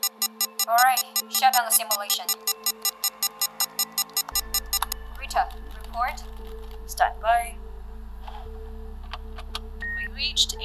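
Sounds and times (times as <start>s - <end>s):
spacecraft master alarm blaring in electronic bursts: 0.0s - 5.0s
speech: 0.7s - 3.1s, 5.3s - 7.6s, 10.2s - 10.6s
low droning hum: 4.4s - 10.6s.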